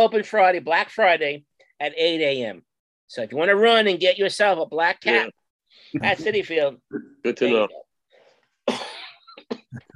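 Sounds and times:
speech: 0:00.0 - 0:07.8, 0:08.7 - 0:09.9
loud harsh cough: 0:08.6 - 0:09.9.

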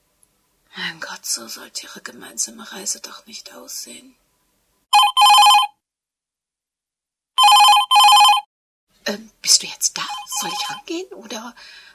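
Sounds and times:
speech: 0:00.9 - 0:04.2, 0:09.1 - 0:11.9
telephone bell ringing in a home: 0:04.9 - 0:05.7, 0:07.4 - 0:08.5, 0:10.2 - 0:10.8.

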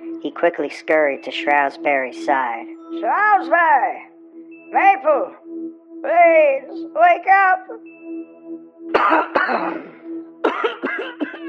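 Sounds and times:
soft steady droning tone: 0:00.0 - 0:11.4
speech: 0:00.2 - 0:04.1, 0:04.7 - 0:05.4, 0:06.0 - 0:08.3, 0:09.0 - 0:10.0
person coughing: 0:09.0 - 0:11.4
throat clearing: 0:09.0 - 0:11.4.

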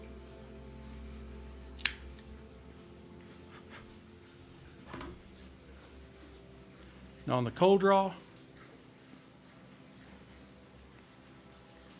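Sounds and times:
faint hum: 0:00.0 - 0:11.9
dual V-cutter snipping the head of a cigar: 0:01.8 - 0:02.3
speech: 0:07.3 - 0:08.2.

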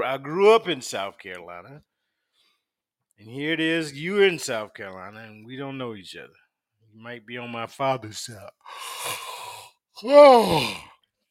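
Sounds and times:
speech: 0:00.0 - 0:01.9, 0:03.2 - 0:06.4, 0:07.0 - 0:09.3, 0:10.0 - 0:10.9
person yawning: 0:08.7 - 0:11.0.

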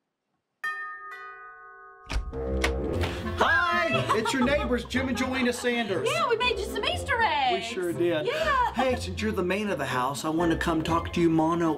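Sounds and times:
two-tone doorbell chime: 0:00.6 - 0:02.3
speech: 0:02.3 - 0:11.7
laughter: 0:03.1 - 0:06.8.

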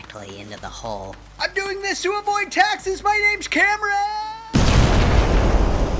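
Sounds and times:
speech: 0:00.2 - 0:04.2
lit stick of dynamite exploding in a hole: 0:04.5 - 0:05.9.

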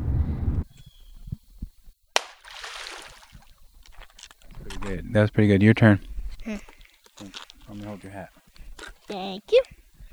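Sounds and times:
low wind rumble: 0:00.0 - 0:01.7
sticks thrown into a river splashing: 0:02.2 - 0:09.2
speech: 0:04.9 - 0:06.7, 0:07.8 - 0:08.4, 0:09.1 - 0:09.8.

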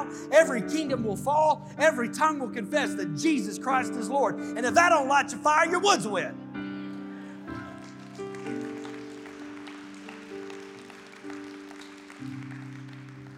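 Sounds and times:
speech: 0:00.0 - 0:06.4
scattered thin audience applause: 0:07.2 - 0:13.3.

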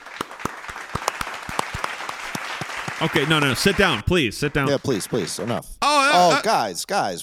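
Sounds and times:
small audience applauding: 0:00.0 - 0:05.5
speech: 0:03.0 - 0:07.2.

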